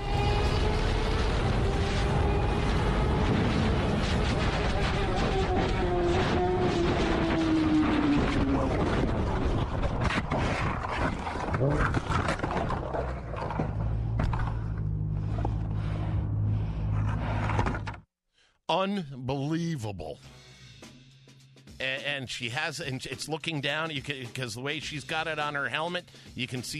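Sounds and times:
wind and motorcycle engine roar at 125 miles per hour: 0.0 - 18.0
motorcycle crash scraping tumbling clatter: 3.2 - 15.6
speech: 18.8 - 20.4, 22.1 - 26.7.

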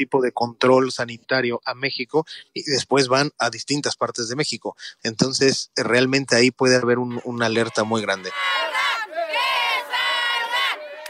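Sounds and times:
speech: 0.0 - 8.8
crowd of protesting factory workers chanting in Ciudad Juarez Mexico: 7.1 - 11.0.

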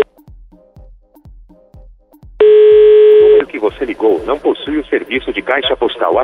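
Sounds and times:
steady telephone tone: 2.4 - 3.5
speech: 3.6 - 6.2.

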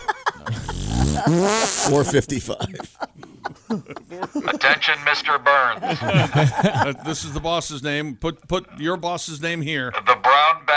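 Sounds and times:
laughter: 0.0 - 7.6
voice blowing a wet buzzy raspberry imitating a fart: 0.5 - 2.1
speech: 1.2 - 10.7.

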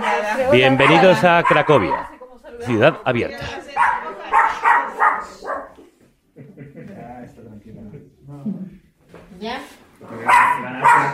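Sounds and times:
laughter: 0.0 - 2.0, 6.3 - 8.4
dog barking: 0.0 - 2.2, 3.7 - 5.8, 10.2 - 11.1
speech: 0.4 - 3.7.

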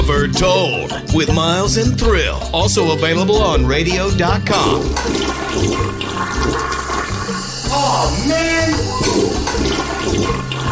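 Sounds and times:
speech: 0.1 - 6.8, 7.7 - 10.5
toilet flushing: 4.4 - 10.7.

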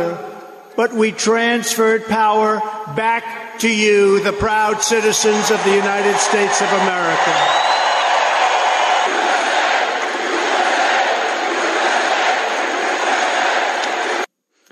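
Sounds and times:
speech: 0.0 - 7.8
large outdoor crowd roaring at a US presidential inauguration: 4.9 - 14.3.

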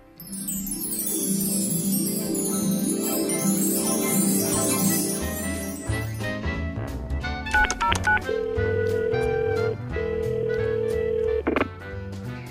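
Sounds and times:
music: 0.0 - 12.4
telephone dialing tones: 7.6 - 11.7.

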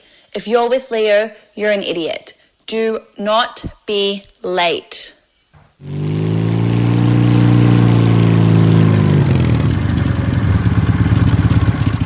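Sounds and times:
speech: 0.4 - 5.2
car engine running and revving: 5.8 - 12.0.

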